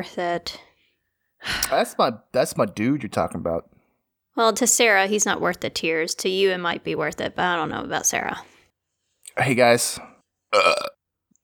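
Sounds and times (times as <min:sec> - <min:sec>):
speech: 0:00.0 - 0:00.7, 0:01.4 - 0:03.7, 0:04.4 - 0:08.5, 0:09.4 - 0:11.0
person burping: 0:10.6 - 0:11.0.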